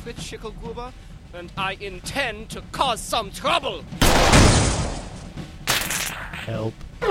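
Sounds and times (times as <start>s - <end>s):
speech: 0.0s - 4.9s, 6.5s - 6.9s
gunshot: 4.0s - 6.5s.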